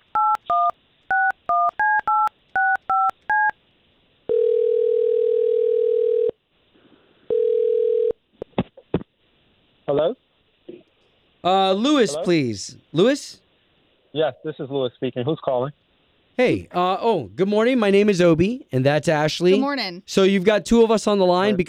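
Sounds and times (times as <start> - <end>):
touch-tone telephone dialing beeps: 0.1 - 3.5
long steady telephone ringing tones: 0.1 - 3.6, 4.3 - 6.4, 7.3 - 8.2
speech: 11.4 - 13.4, 14.1 - 15.8, 16.4 - 21.6.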